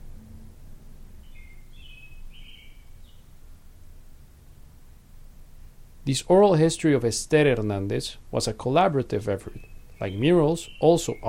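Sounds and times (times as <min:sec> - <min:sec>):
birds chirping outdoors at a house: 0:01.2 - 0:03.4, 0:09.2 - 0:11.2
speech: 0:06.1 - 0:11.2.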